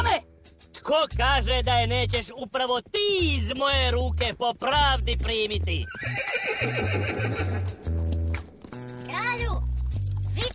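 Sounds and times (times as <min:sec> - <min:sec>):
speech: 0:00.9 - 0:07.9
black horse's hooves clip-clopping: 0:02.2 - 0:10.5
black horse ridden by a knight in armour whinnying: 0:05.8 - 0:08.1.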